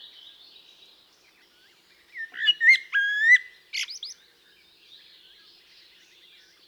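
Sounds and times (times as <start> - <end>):
common blackbird Turdus merula singing: 2.2 - 4.1.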